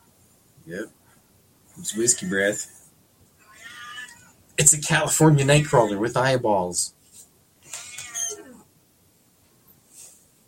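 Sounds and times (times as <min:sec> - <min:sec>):
speech: 0:00.7 - 0:01.0, 0:01.8 - 0:02.8, 0:04.6 - 0:07.0
cat whining and meowing: 0:03.4 - 0:04.4, 0:07.7 - 0:08.7.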